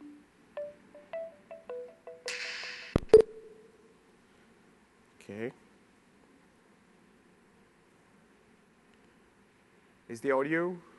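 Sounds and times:
phone electronic ringtone for an incoming call: 0.0 - 2.4
speech: 5.3 - 5.6, 10.1 - 10.9.

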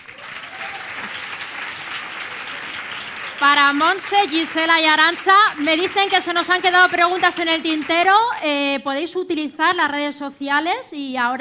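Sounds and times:
audience applause at a conference session: 0.0 - 8.2
speech: 3.4 - 11.3.

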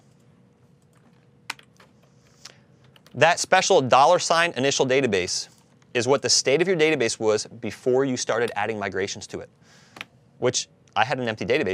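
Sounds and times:
typing a database command on a computer keyboard: 0.8 - 2.0, 2.8 - 3.2
speech: 3.2 - 9.8, 10.4 - 11.7.

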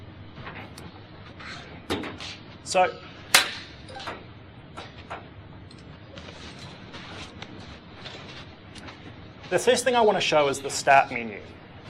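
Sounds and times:
speech: 2.7 - 3.1, 9.5 - 11.6
chair dragged scraping and bumping across the floor: 6.2 - 9.1.

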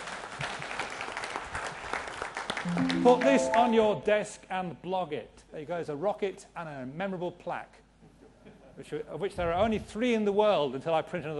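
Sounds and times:
audience applause: 0.0 - 3.8
speech: 2.6 - 7.8, 8.8 - 11.3.

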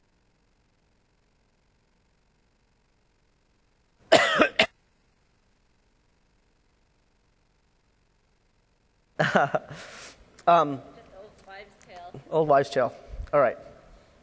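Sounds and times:
sharp rough coughing: 4.1 - 4.7
speech: 9.2 - 11.0, 12.1 - 13.7.

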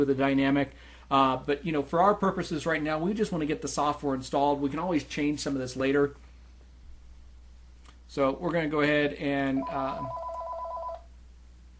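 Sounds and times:
speech: 0.0 - 6.2, 8.1 - 10.2
low hum: 0.0 - 11.7
telephone ringing with electronic trill: 9.6 - 11.1.

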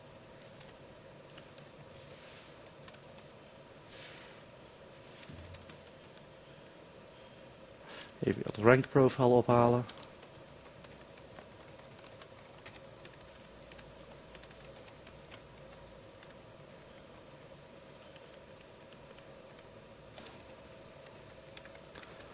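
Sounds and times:
faint hum: 0.0 - 22.3
typing on a computer keyboard: 0.6 - 0.8, 2.6 - 3.3, 5.2 - 6.3, 9.8 - 22.3
speech: 8.2 - 10.0.

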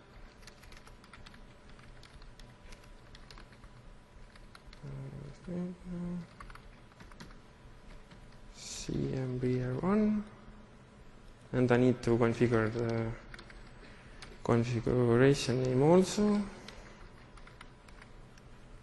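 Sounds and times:
typing login credentials on a computer keyboard: 0.1 - 4.9, 6.3 - 8.3, 12.6 - 14.4, 16.8 - 18.1
speech: 4.8 - 6.4, 8.8 - 10.4, 11.5 - 13.2, 14.4 - 16.6.

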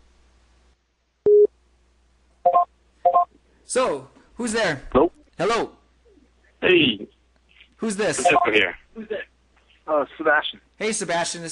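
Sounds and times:
speech: 3.7 - 5.8, 6.6 - 7.1, 7.8 - 9.3, 9.9 - 11.5
Skype call tones placing a call to a conference line: 8.2 - 8.7.

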